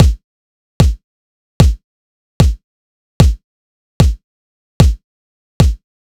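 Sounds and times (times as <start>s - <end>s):
dubstep kick drum loop: 0.0s - 0.2s, 0.8s - 1.0s, 1.6s - 1.8s, 2.4s - 2.6s, 3.2s - 3.4s, 4.0s - 4.2s.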